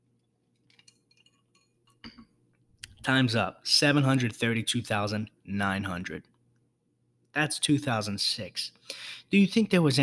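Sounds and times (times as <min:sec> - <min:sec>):
mug clinking while being handled: 0:00.7 - 0:02.4
speech: 0:03.1 - 0:06.3, 0:07.4 - 0:10.0.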